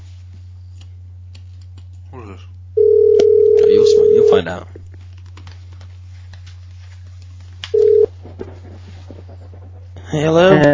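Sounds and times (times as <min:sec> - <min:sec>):
low constant hum: 0:00.0 - 0:10.7
speech: 0:02.2 - 0:02.6, 0:04.4 - 0:04.8, 0:10.1 - 0:10.7
electronic telephone beep: 0:02.8 - 0:04.4, 0:07.8 - 0:08.1.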